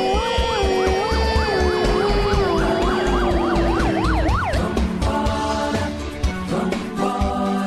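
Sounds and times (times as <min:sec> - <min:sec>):
fire engine siren wailing: 0:00.2 - 0:05.9
thumping musical beat: 0:01.4 - 0:07.5.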